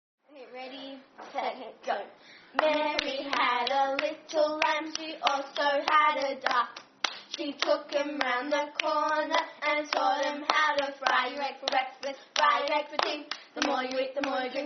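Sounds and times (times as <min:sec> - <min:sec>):
clapping: 0:02.6 - 0:09.2, 0:09.9 - 0:14.4.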